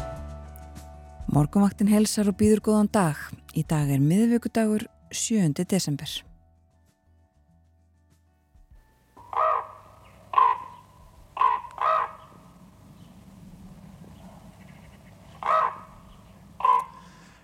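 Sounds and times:
speech: 1.4 - 6.3
raven croaking outdoors: 9.2 - 12.7, 13.8 - 17.2.

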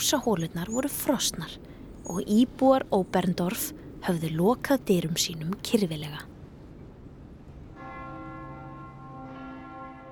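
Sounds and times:
speech: 0.0 - 6.3
hiss: 0.0 - 10.0
church bells ringing at the church of Saint Nicholas in Oberndorf: 7.8 - 10.0.

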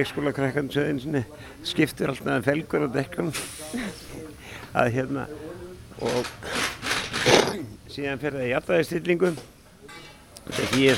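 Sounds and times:
speech: 0.0 - 7.4, 8.0 - 10.9
air hissing out of a car tire being deflated: 3.3 - 4.0.

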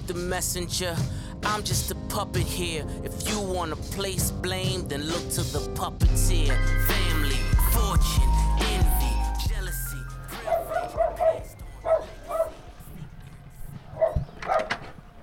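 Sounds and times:
speech: 0.1 - 8.8
dog barking: 10.4 - 12.6, 14.0 - 14.8.

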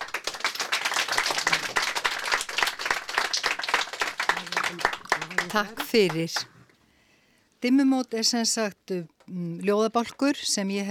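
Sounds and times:
audience applause at a poetry reading: 0.0 - 6.5
speech: 5.5 - 6.5, 7.6 - 10.8.

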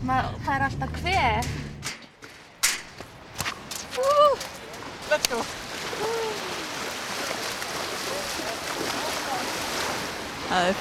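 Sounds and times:
speech: 0.0 - 1.7, 4.0 - 4.5, 5.1 - 6.6, 10.5 - 10.7
sea surf roaring at a beach at Nauthólsvík: 3.2 - 10.7.

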